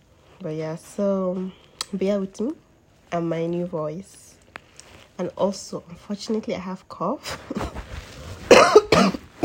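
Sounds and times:
speech: 0:00.4 - 0:04.3, 0:05.2 - 0:07.7
person with husky voice coughing: 0:08.5 - 0:09.4.

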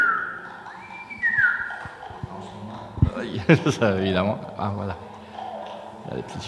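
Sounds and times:
human whistle fed into an audio feedback system: 0:00.0 - 0:02.0
laughter: 0:03.0 - 0:04.4
speech: 0:03.2 - 0:05.1, 0:06.1 - 0:06.4.

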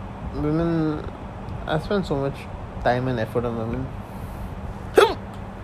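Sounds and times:
speech: 0:00.4 - 0:04.0
sharp gulping hiccup: 0:04.9 - 0:05.3.

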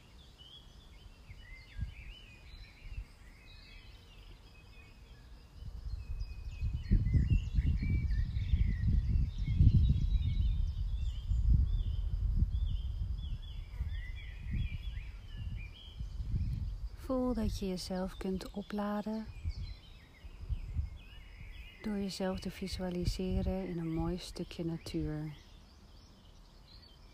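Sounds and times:
low wind-like rumble: 0:00.0 - 0:27.1
many birds chirping and warbling: 0:00.0 - 0:27.1
speech: 0:17.1 - 0:19.4, 0:21.8 - 0:25.4.

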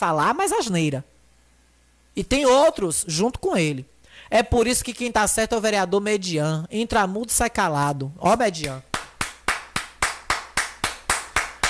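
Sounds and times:
speech: 0:00.0 - 0:01.1, 0:02.2 - 0:08.9
hand clapping: 0:08.6 - 0:11.6.

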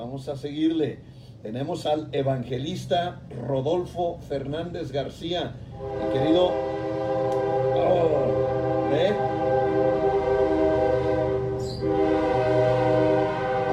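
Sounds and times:
speech: 0:00.1 - 0:07.0, 0:08.9 - 0:09.4
loud overlapping shofar horn blasts: 0:05.7 - 0:13.7.

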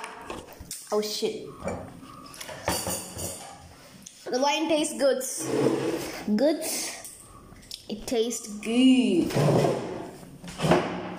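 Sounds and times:
speech: 0:00.9 - 0:02.0, 0:04.3 - 0:06.9, 0:08.1 - 0:09.9
chair shifting and bumping against the floor: 0:05.4 - 0:06.2, 0:09.2 - 0:11.1.

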